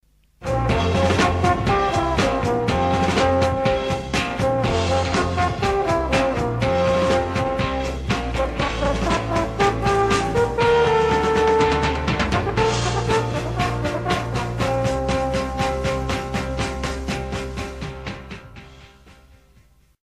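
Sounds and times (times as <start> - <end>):
horn in pop music: 0.4 - 18.8.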